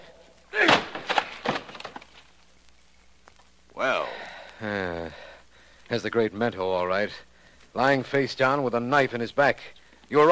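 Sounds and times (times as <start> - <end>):
locked wooden door being broken down: 0.6 - 2.2
knocks and creaks of splintering wood: 0.6 - 2.5
speech: 5.9 - 10.3.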